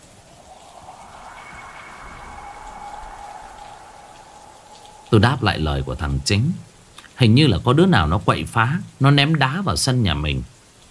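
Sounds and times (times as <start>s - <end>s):
faint whistling tone: 0.0s - 7.0s
wind and rain gusting in through an opened house door: 0.0s - 10.8s
speech: 5.1s - 10.6s.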